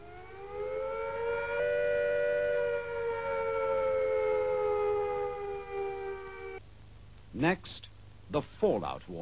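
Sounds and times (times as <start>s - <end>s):
civil defense siren wailing in a rising-and-falling attack warning: 0.0s - 6.6s
speech: 7.4s - 9.2s.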